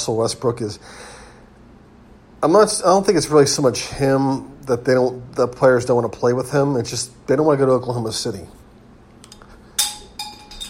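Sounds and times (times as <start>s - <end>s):
speech: 0.0s - 1.2s, 2.4s - 8.6s
small glass lens popping out and clinking against a hard surface: 9.2s - 10.6s.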